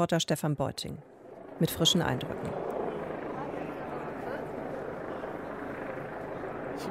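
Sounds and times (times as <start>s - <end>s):
speech: 0.0s - 2.7s
helicopter hovering overhead during a demonstration: 0.0s - 6.8s
murmur of voices at a demonstration: 2.4s - 6.8s.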